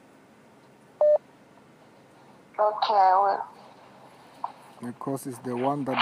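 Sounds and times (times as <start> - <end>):
faint steady hiss: 0.0 - 5.9
electronic beep from a phone on loudspeaker: 1.0 - 1.2
speech: 2.6 - 3.5, 4.8 - 5.9.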